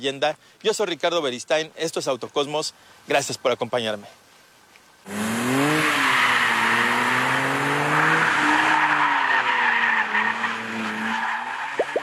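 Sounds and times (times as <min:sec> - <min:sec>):
speech: 0:00.0 - 0:04.2, 0:05.0 - 0:05.8
Dodge Charger engine roaring driven hard on mountain road: 0:05.1 - 0:12.0
tires squealing and skidding: 0:05.1 - 0:12.0.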